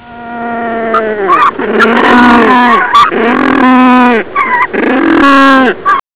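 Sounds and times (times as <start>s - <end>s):
penguin braying calls: 0.4s - 6.0s.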